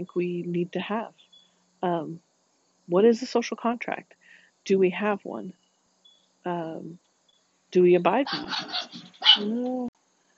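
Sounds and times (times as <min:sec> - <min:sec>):
speech: 0:00.0 - 0:02.3, 0:02.9 - 0:05.6, 0:06.4 - 0:07.0, 0:07.7 - 0:09.9
dog bark stretching into a tonal yowl: 0:08.3 - 0:09.5.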